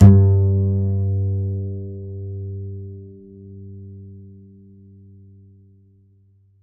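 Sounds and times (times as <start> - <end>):
bass G note: 0.0 - 5.4.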